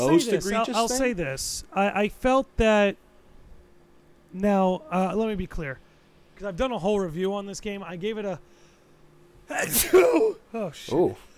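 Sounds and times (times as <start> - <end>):
speech: 0.0 - 3.0, 4.3 - 5.8, 6.4 - 8.6, 9.5 - 11.3
person putting on a loud sneeze: 9.5 - 10.4.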